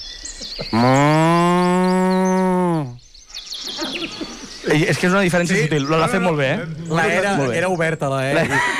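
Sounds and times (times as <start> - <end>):
faint birdsong: 0.0 - 8.7
speech: 0.6 - 1.5, 4.7 - 8.7
person imitating a cow from Sant Pere de Torelló mooing: 0.7 - 3.0
laughter: 3.6 - 7.6, 8.2 - 8.7.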